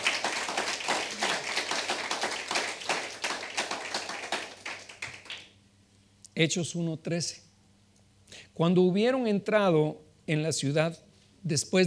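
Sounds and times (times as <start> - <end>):
audience clapping: 0.0 - 5.6
speech: 6.4 - 7.5, 8.6 - 11.8.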